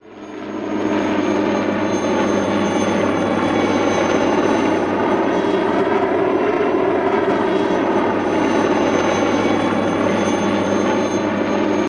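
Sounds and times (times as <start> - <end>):
Jet Ranger jet helicopter flying over and revving: 0.0 - 11.8.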